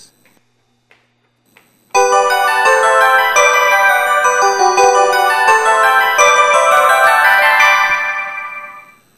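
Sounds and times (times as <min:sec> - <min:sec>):
melody: 0:02.0 - 0:09.0.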